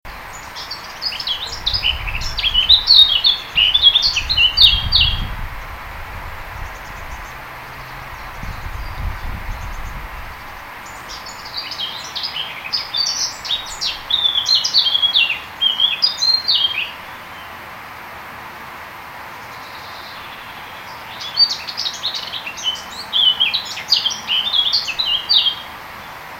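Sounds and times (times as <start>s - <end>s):
Sylvia atricapilla singing in a hedge: 0.1s - 5.4s, 8.0s - 17.0s, 21.2s - 25.7s.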